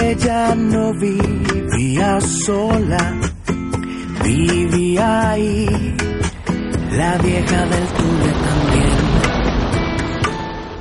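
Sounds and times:
speech: 0.1 - 3.3, 4.2 - 6.2, 6.9 - 9.3
heavy rainstorm: 5.1 - 10.7.

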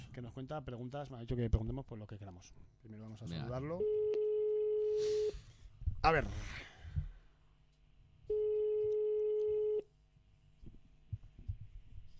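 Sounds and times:
speech: 0.2 - 4.3, 6.0 - 6.7
ringback tone of an outgoing phone call: 3.8 - 5.3, 8.3 - 9.8
soft rustling and low handling noise: 10.5 - 12.1.

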